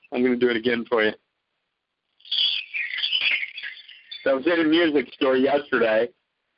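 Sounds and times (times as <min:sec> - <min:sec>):
speech: 0:00.2 - 0:01.2, 0:04.2 - 0:06.2
bright shimmering chimes ringing: 0:02.2 - 0:05.8.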